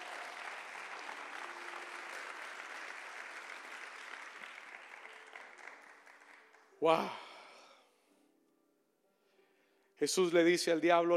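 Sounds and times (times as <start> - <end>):
audience applauding: 0.0 - 6.9
speech: 6.8 - 7.2, 10.0 - 11.1.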